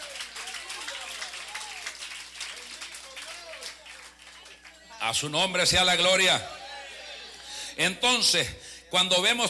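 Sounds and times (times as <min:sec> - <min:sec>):
church congregation applauding: 0:00.0 - 0:04.9
speech: 0:05.0 - 0:06.6, 0:07.8 - 0:09.4.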